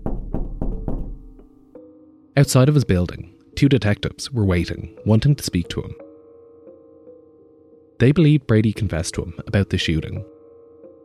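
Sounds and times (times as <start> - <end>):
heavy knocks on a wooden door: 0.0 - 1.5
speech: 2.4 - 6.0, 8.0 - 10.3.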